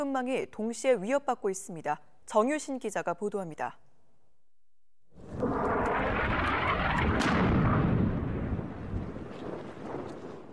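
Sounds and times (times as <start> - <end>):
speech: 0.0 - 3.8
explosion during armed clash: 5.2 - 10.5
wind buffeting the microphone outdoors: 5.2 - 10.5.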